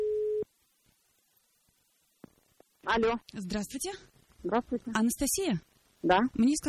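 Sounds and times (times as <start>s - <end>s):
telephone ringback tone during call: 0.0s - 0.4s
speech: 2.9s - 6.6s.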